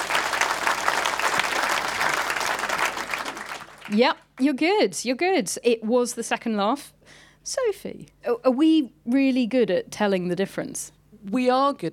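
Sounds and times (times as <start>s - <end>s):
room full of people applauding: 0.0s - 4.0s
speech: 3.9s - 11.9s.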